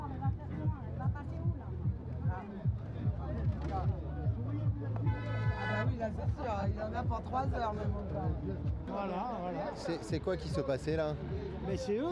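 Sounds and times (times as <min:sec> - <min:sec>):
busy murmur of voices talking: 0:00.0 - 0:12.0
truck horn honking from angry truck drivers at a roadblock: 0:05.1 - 0:05.9
speech: 0:06.1 - 0:12.0.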